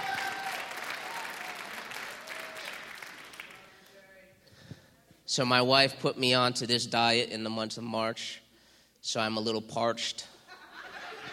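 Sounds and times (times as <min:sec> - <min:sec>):
audience applause at a live show: 0:00.0 - 0:03.7
speech: 0:05.3 - 0:08.4, 0:09.0 - 0:10.3
laughter: 0:10.4 - 0:11.3.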